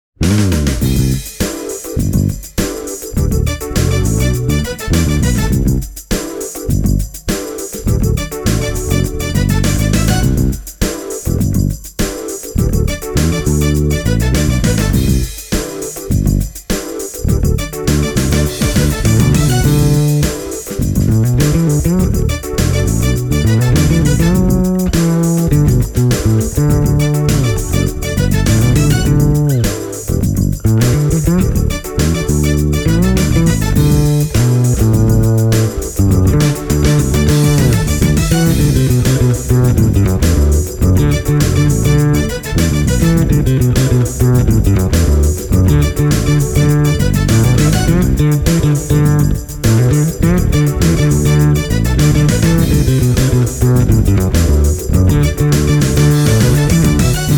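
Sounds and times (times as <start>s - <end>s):
six-string electric double bass: 0.2s - 1.3s, 2.0s - 2.5s, 3.1s - 6.0s, 6.7s - 7.2s, 7.9s - 10.7s, 11.3s - 11.8s, 12.6s - 15.4s, 16.1s - 16.6s, 17.2s - 57.3s.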